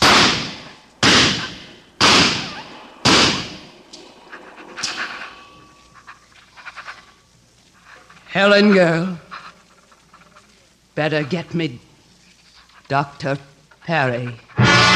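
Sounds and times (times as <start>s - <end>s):
gunshots in a radio drama: 0.0s - 4.0s
speech: 8.4s - 9.2s, 11.0s - 11.9s, 12.9s - 14.5s.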